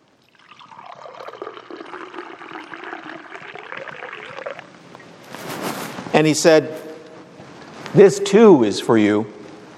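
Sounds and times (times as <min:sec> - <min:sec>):
wine pouring into a cup during a communion service: 0:00.2 - 0:04.8
speech: 0:06.2 - 0:06.8, 0:08.0 - 0:09.4.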